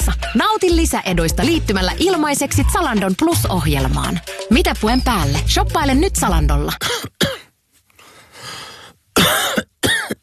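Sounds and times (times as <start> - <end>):
speech: 0.4 - 7.2
person coughing: 6.8 - 7.5, 9.2 - 10.2.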